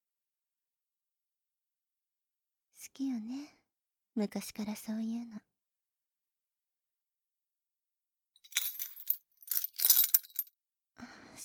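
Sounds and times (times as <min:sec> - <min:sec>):
speech: 0:02.8 - 0:03.6, 0:04.2 - 0:05.5
single key clinking as it is handed over: 0:08.4 - 0:10.5.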